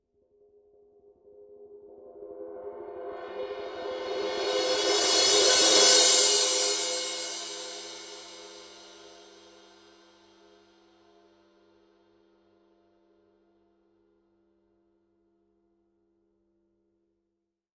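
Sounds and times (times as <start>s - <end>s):
Paiste Rude 17 thin crash cymbal swell: 4.0s - 9.4s.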